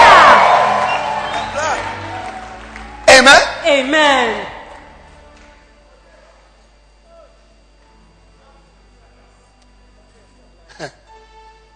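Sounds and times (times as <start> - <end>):
people whooping: 0.0 - 3.3
crowd shouting and cheering: 0.0 - 5.2.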